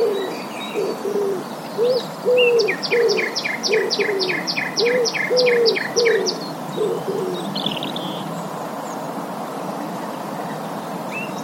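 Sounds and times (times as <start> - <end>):
common nightingale song: 0.0 - 11.4
speech: 1.1 - 7.8.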